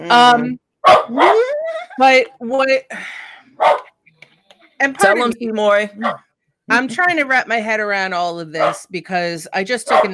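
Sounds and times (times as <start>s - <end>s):
speech: 0.0s - 1.4s, 2.0s - 3.9s, 4.8s - 10.1s
dog barking: 0.9s - 1.4s, 3.6s - 3.8s, 9.9s - 10.1s.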